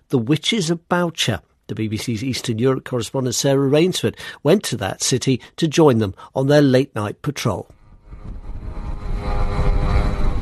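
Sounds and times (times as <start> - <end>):
speech: 0.1 - 8.4
Russian attack drones buzzing overhead over Kyiv Ukraine: 7.8 - 10.4.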